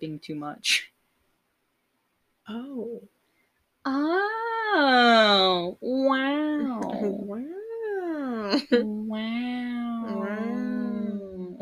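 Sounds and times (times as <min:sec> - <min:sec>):
speech: 0:00.0 - 0:00.9, 0:02.5 - 0:03.2, 0:03.8 - 0:07.6, 0:08.5 - 0:09.5
cat-like meow voiced by a person: 0:03.9 - 0:11.6.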